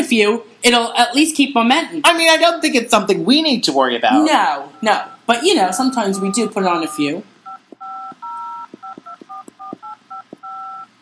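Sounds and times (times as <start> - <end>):
speech: 0.1 - 7.3
telephone keypad touch-tone beeps with faint clicks: 4.7 - 10.9.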